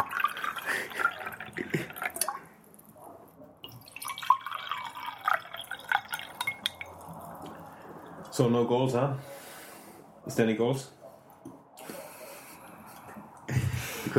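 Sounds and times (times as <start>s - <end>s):
water poured into a glass: 0.0s - 2.5s, 3.6s - 8.1s
speech: 8.4s - 9.3s, 10.3s - 11.0s.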